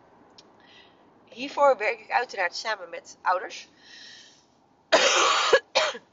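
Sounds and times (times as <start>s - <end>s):
speech: 1.4s - 4.1s
person coughing after choking slightly: 5.0s - 6.1s.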